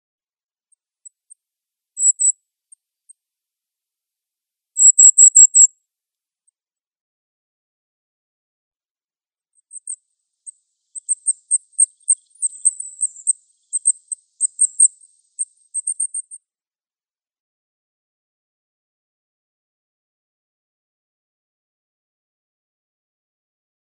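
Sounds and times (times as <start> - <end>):
Goldcrest calls: 2.0 - 2.3, 4.8 - 5.7, 9.7 - 16.4.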